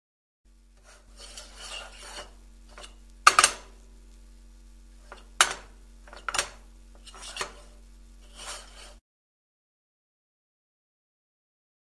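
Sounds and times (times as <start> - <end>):
metal frying pan being handled and scraped: 0.7 - 3.9, 4.9 - 9.0
metal frying pan clanks: 2.7 - 3.8, 5.1 - 6.6.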